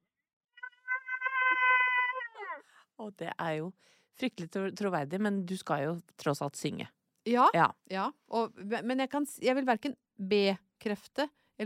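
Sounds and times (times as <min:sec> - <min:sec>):
person imitating a cow moo: 0:00.9 - 0:02.6
speech: 0:03.0 - 0:11.6.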